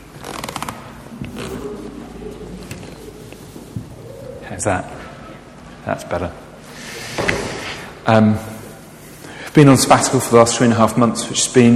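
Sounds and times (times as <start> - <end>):
creaking in a room: 0.0 - 5.6
rustling: 0.0 - 5.6
speech: 4.5 - 5.0, 5.8 - 6.4, 8.0 - 8.5, 9.6 - 11.7.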